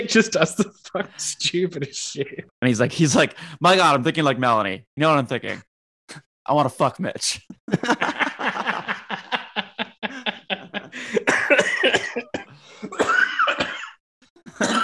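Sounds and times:
speech: 0:00.0 - 0:08.1
laughter: 0:07.7 - 0:12.3
person coughing harshly: 0:11.0 - 0:14.8.

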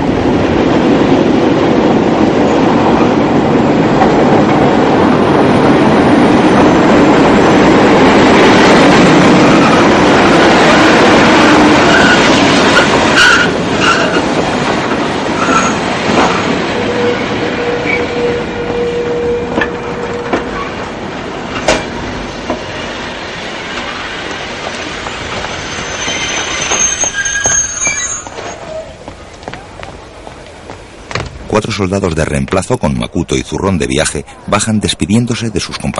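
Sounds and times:
diesel train rolling into a station: 0:00.0 - 0:35.9
diesel train brakes squealing: 0:11.6 - 0:14.3, 0:15.4 - 0:20.8, 0:25.4 - 0:29.0
speech: 0:31.8 - 0:35.9.

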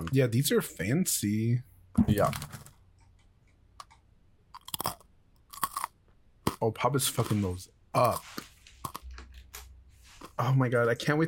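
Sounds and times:
speech: 0:00.1 - 0:02.6, 0:06.6 - 0:08.5, 0:10.4 - 0:11.2
tomato and herb artisanal-style crackers being bitten and chewed: 0:03.8 - 0:10.4.

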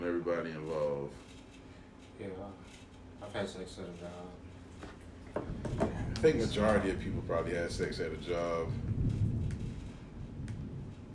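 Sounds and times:
speech: 0:00.0 - 0:01.4, 0:02.2 - 0:09.2
distant rolling thunder: 0:06.0 - 0:11.1
faint rain-like hiss: 0:06.1 - 0:11.1.

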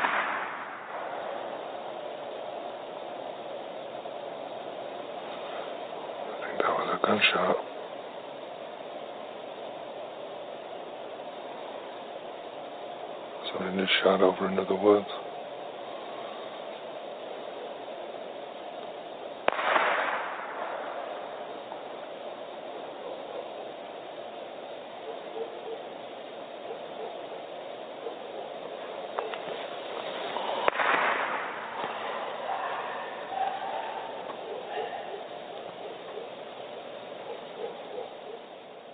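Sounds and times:
quiet outdoor hiss: 0:00.0 - 0:38.9
speech: 0:06.6 - 0:07.7, 0:13.6 - 0:15.3
harsh half-barking half-laughing animal call from the woods: 0:32.4 - 0:36.3.

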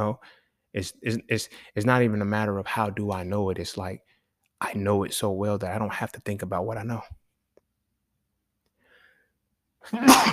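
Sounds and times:
speech: 0:00.0 - 0:07.2, 0:09.8 - 0:10.3
person sneezing: 0:09.8 - 0:10.3.

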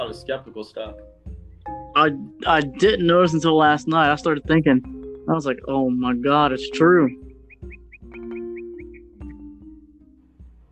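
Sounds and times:
speech: 0:00.1 - 0:07.2
bird chirping in short high notes: 0:04.5 - 0:09.9.

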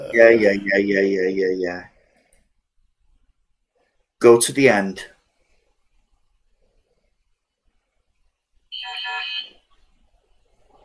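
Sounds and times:
speech: 0:00.1 - 0:01.9, 0:04.2 - 0:05.1
phone ringtone chime: 0:08.7 - 0:09.5.

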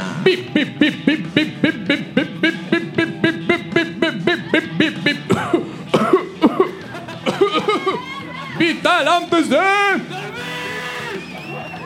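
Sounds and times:
laughter: 0:00.0 - 0:11.8
speech: 0:00.2 - 0:02.1
live audience cheering and whooping: 0:07.4 - 0:08.7, 0:09.9 - 0:11.8.

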